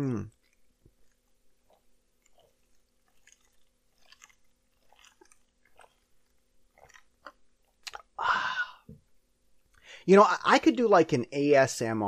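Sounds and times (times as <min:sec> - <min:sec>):
speech: 0:00.0 - 0:00.4, 0:10.0 - 0:12.0
mouth clicks and swallowing while drinking soda from a cup: 0:00.3 - 0:08.2.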